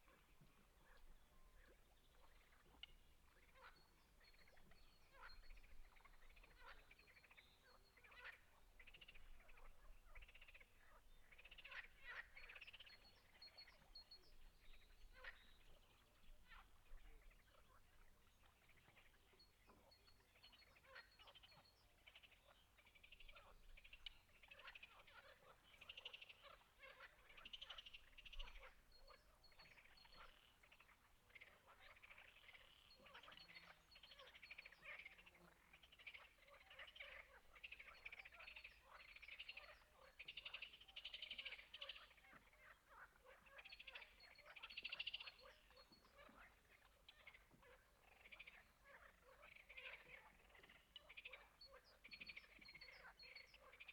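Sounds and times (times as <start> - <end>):
frogs croaking: 1.6 - 53.9.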